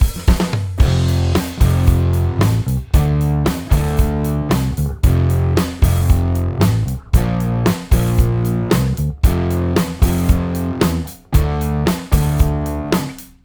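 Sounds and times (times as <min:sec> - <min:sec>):
groove music on a bus: 0:00.0 - 0:13.4.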